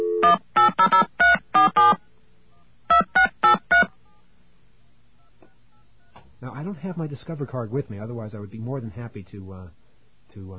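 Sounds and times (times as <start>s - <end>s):
touch-tone telephone dialing a number: 0.0s - 2.0s, 2.9s - 3.9s
speech: 0.2s - 1.2s, 6.8s - 10.5s.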